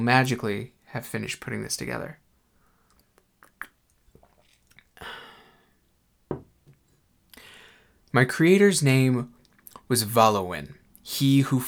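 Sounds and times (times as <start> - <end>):
speech: 0.0 - 2.2, 8.1 - 11.6
mouth clicks: 2.9 - 4.9
slurping sip of tea: 3.4 - 5.0
soft knock of a cup: 6.3 - 6.8.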